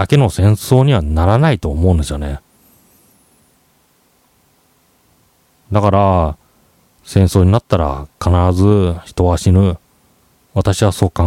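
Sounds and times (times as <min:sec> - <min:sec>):
speech: 0:00.0 - 0:02.4, 0:05.7 - 0:06.4, 0:07.0 - 0:09.8, 0:10.6 - 0:11.2
steady low-level broadband hiss and hum: 0:00.0 - 0:11.2.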